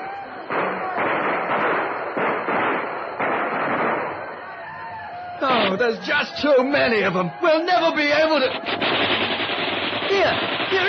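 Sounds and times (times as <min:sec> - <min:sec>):
volley of gunfire from a line of soldiers during a battle: 0:00.5 - 0:04.5, 0:08.4 - 0:10.8
speech: 0:05.7 - 0:09.2, 0:10.2 - 0:10.8.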